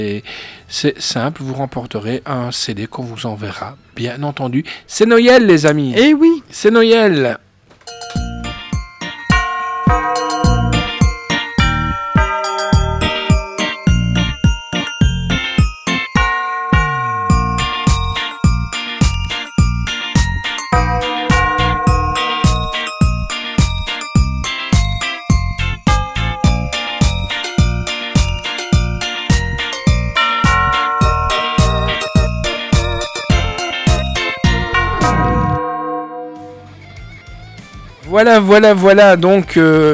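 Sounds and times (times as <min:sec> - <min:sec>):
speech: 0:00.0 - 0:07.4, 0:38.2 - 0:39.9
Christmas bells jingling and clanging: 0:07.9 - 0:37.2.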